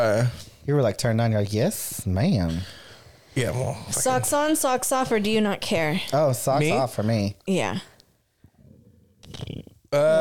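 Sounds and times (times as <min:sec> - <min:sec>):
speech: 0:00.0 - 0:02.8, 0:03.4 - 0:07.9, 0:09.3 - 0:10.1
deep gurgling burp: 0:09.2 - 0:10.1.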